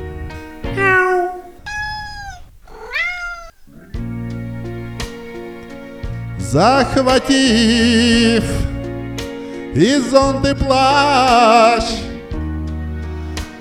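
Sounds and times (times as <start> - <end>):
kitten mewing pitifully in a yard: 0.0 - 5.6
speech: 6.5 - 8.7, 9.8 - 12.0.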